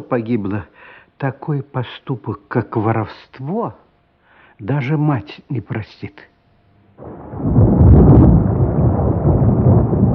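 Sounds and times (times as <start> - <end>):
speech: 0.0 - 3.8, 4.6 - 6.3, 7.0 - 7.6
thunder rolling in a thunderstorm: 7.0 - 10.1.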